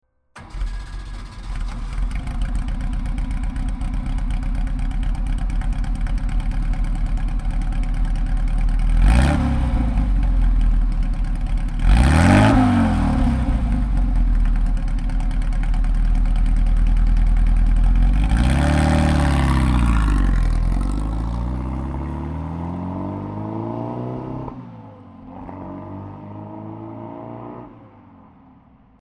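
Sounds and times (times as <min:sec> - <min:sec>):
Porsche 550 Spyder engine: 0:00.4 - 0:28.9.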